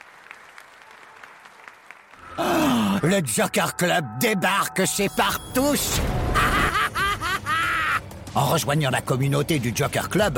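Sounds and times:
applause: 0:00.0 - 0:02.3
speech: 0:03.0 - 0:06.2, 0:08.4 - 0:10.3
laughter: 0:06.3 - 0:08.0.

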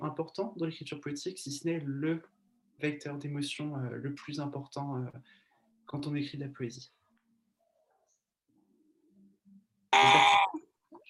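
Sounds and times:
speech: 0:00.0 - 0:07.0
baby girl squealing shrilly: 0:10.0 - 0:10.6.

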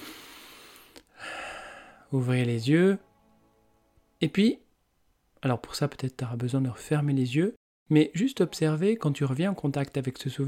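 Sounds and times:
slow airy deep breath in: 0:00.0 - 0:02.1
speech: 0:02.1 - 0:03.1, 0:04.2 - 0:04.6, 0:05.4 - 0:10.4.

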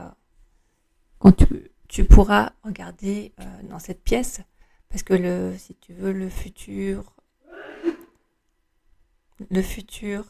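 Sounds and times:
speech: 0:01.2 - 0:07.2, 0:09.4 - 0:10.2
person sneezing: 0:07.5 - 0:08.2.

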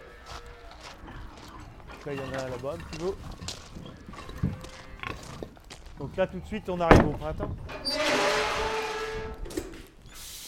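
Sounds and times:
steady rustling noise: 0:00.0 - 0:07.8
dairy cows snorting and grunting: 0:00.0 - 0:09.3
dairy cows' hooves shuffling in a field: 0:00.0 - 0:10.2
speech: 0:02.0 - 0:03.4, 0:06.0 - 0:07.7.

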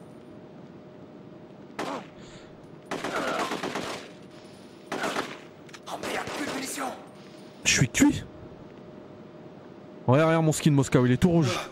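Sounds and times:
automatic gunfire in a first-person shooter video game: 0:02.9 - 0:04.2, 0:04.9 - 0:06.9
speech: 0:06.8 - 0:08.3, 0:10.1 - 0:11.7.

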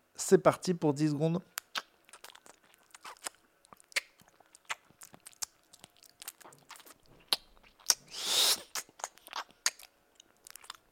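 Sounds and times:
speech: 0:00.2 - 0:01.6
wet mouth noises imitating chewing without food: 0:01.5 - 0:10.9
hissing slurping mouth burst: 0:08.1 - 0:08.8.

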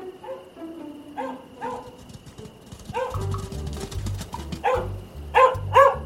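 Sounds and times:
Australian shepherd barking while running: 0:00.2 - 0:00.5, 0:01.2 - 0:02.2, 0:02.9 - 0:03.2, 0:04.5 - 0:06.0
low rhythmic thumping: 0:01.4 - 0:06.0.

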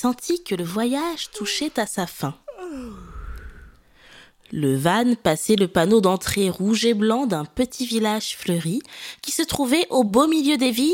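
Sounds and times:
speech: 0:00.0 - 0:03.1, 0:04.5 - 0:10.9
child yawning while waking up: 0:02.5 - 0:03.8.

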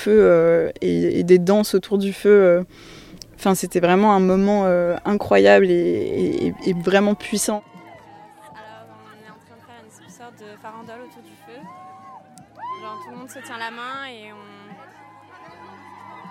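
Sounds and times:
speech: 0:00.0 - 0:07.7, 0:13.1 - 0:14.6
crowd of many voices shouting and yelling outdoors: 0:05.5 - 0:16.2.

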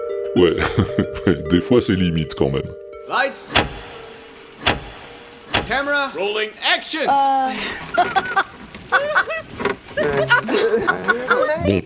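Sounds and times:
laughter: 0:00.4 - 0:01.7, 0:07.5 - 0:11.8
speech: 0:00.4 - 0:03.6, 0:05.7 - 0:09.3, 0:10.0 - 0:11.8
steady low hum of a vehicle interior: 0:03.4 - 0:06.0
sharp loud whooshing foley effect: 0:03.4 - 0:06.2.

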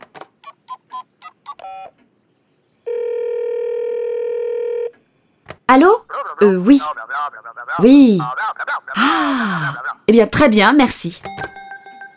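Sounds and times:
telephone calling tone while phoning the World Meteorological Organization in Switzerland: 0:00.7 - 0:02.0, 0:02.8 - 0:05.0
speech: 0:05.8 - 0:07.0, 0:07.7 - 0:08.4, 0:09.0 - 0:11.3
telephone keypad beeps: 0:11.3 - 0:12.1.

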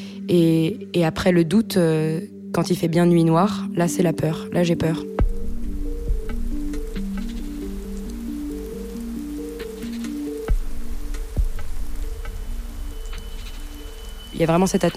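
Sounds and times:
speech: 0:00.3 - 0:05.3, 0:14.4 - 0:14.9
low slowly shifting tonal drone: 0:05.2 - 0:14.9
rain falling in a misty humid forest at night: 0:05.2 - 0:14.9
scattered drops ticking: 0:05.2 - 0:14.9.

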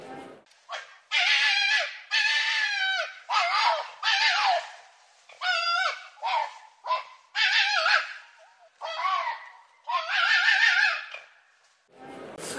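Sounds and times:
fox crying out in harsh raspy yelps: 0:00.7 - 0:11.4.

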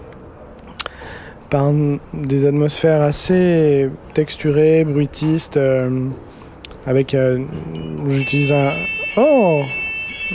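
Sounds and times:
speech: 0:01.5 - 0:10.3
drawn-out exclamation: 0:07.5 - 0:10.3
steady high-pitched fire alarm tone: 0:07.7 - 0:10.3.

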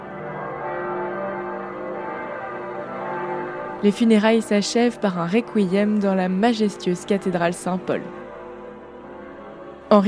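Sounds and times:
church bells ringing in unison: 0:00.0 - 0:10.0
speech: 0:03.8 - 0:08.2.

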